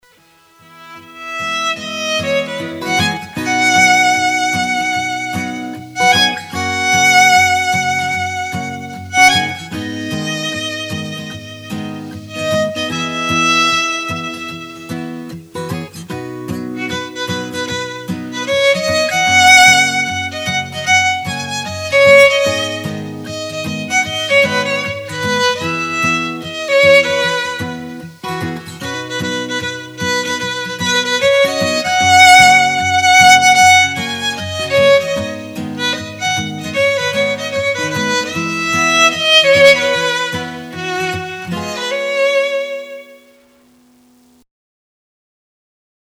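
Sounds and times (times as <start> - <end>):
violin: 0.0 - 44.2
guitar: 0.0 - 44.4.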